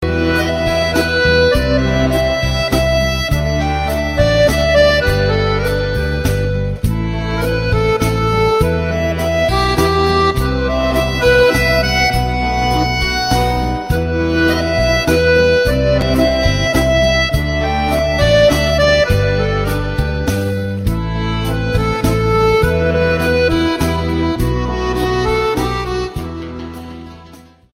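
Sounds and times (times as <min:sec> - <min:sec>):
soft accordion: 0:00.0 - 0:27.7.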